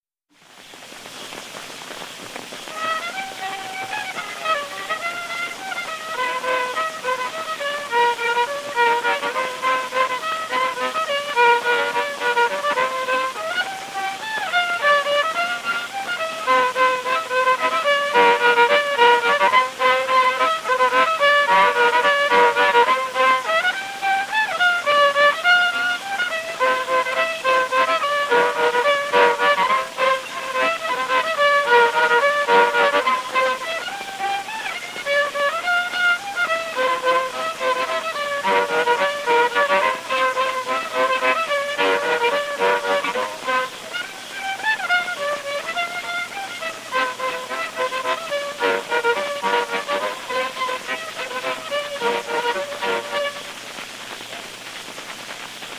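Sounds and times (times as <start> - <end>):
violin folk tune from Ruhnu: 0.3 - 55.7.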